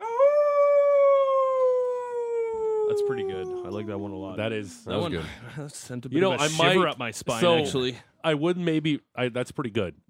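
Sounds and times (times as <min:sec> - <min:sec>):
person imitating a wolf howl: 0:00.0 - 0:03.9
speech: 0:02.9 - 0:10.0.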